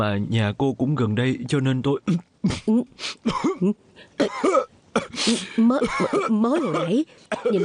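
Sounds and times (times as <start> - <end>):
speech: 0.0 - 7.6
feverish man coughing: 2.1 - 7.6.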